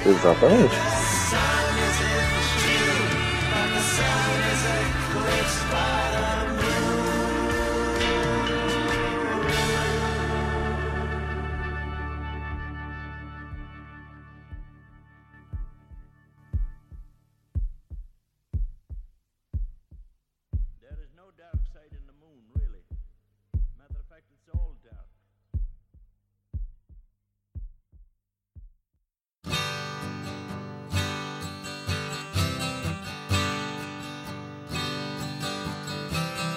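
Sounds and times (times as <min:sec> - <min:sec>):
speech: 0:00.0 - 0:00.9
album track music: 0:00.0 - 0:25.0, 0:29.4 - 0:36.5
steady heartbeat with deep regular thumps: 0:14.5 - 0:14.8, 0:15.5 - 0:29.0.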